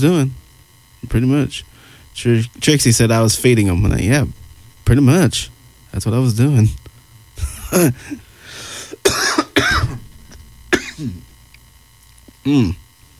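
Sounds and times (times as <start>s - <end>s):
speech: 0.0s - 0.4s, 1.0s - 6.9s, 7.7s - 9.8s, 11.0s - 11.2s, 12.4s - 12.8s
person coughing harshly: 8.9s - 11.2s.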